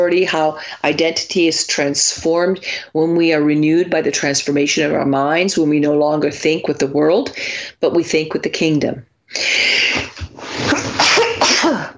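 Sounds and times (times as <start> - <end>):
speech: 0.0 - 10.8
person sneezing in an audience: 9.7 - 11.9.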